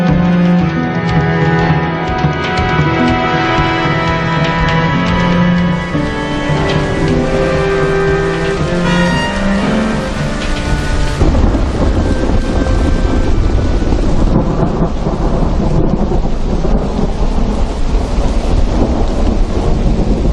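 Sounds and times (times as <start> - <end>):
brief tonal musical passage: 0.0 - 14.6
deep thunder rumbling: 0.0 - 20.3
heavy rain: 0.0 - 20.3.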